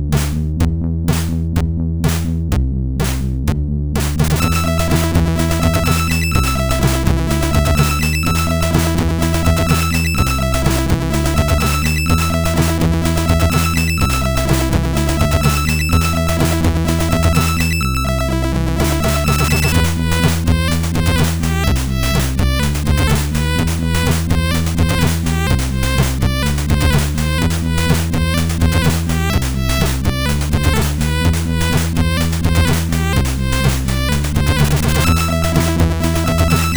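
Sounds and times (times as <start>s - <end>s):
filtered music from a SID MOS6581R4 sound chip: 0.1s - 36.7s.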